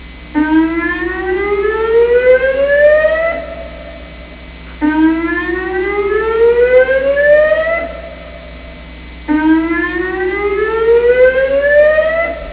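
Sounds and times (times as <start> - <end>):
police siren: 0.4 - 12.5.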